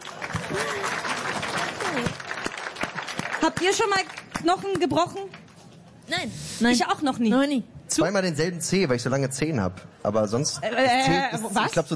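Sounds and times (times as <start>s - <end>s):
applause from a small group: 0.0s - 5.4s
speech: 3.4s - 5.4s, 6.1s - 11.9s.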